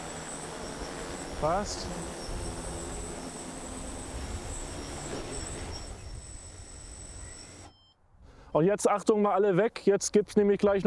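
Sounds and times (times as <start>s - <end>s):
thin high-pitched whine of a drone docking box opening: 0.0s - 7.8s
drone docking box opening with a motorized whir: 0.0s - 7.9s
speech: 1.4s - 2.2s, 8.5s - 10.8s.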